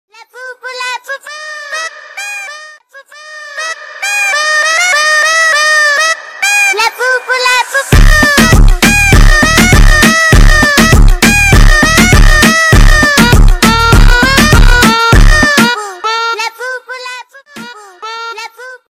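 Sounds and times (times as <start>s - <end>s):
reggaeton music: 3.8s - 16.1s.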